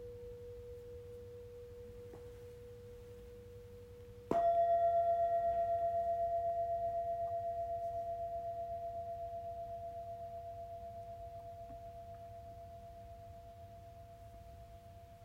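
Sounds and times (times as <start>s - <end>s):
singing bowl humming a steady pure tone: 0.0s - 15.2s
struck singing bowl ringing with faint overtones: 4.3s - 13.3s.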